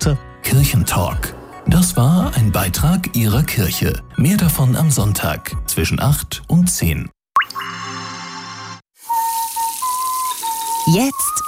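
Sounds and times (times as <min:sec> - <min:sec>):
speech: 0:00.0 - 0:07.2, 0:10.9 - 0:11.4
brief tonal whistle: 0:09.0 - 0:11.4
water running from a tap as hands are washed: 0:09.0 - 0:11.4.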